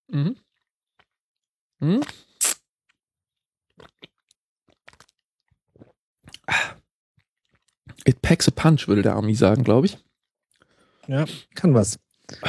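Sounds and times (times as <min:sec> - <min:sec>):
speech: 0:00.1 - 0:00.4, 0:01.8 - 0:02.2, 0:08.0 - 0:10.1, 0:11.1 - 0:12.4
mouth clicks at the microphone: 0:01.9 - 0:02.6
wet lip smacking into the microphone: 0:02.0 - 0:02.6.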